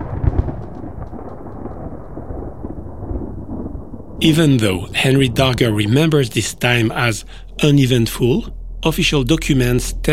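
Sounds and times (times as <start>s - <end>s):
deep thunder rumbling during a storm: 0.0s - 10.1s
constant hiss of falling rain: 4.2s - 10.1s
speech: 4.2s - 10.1s.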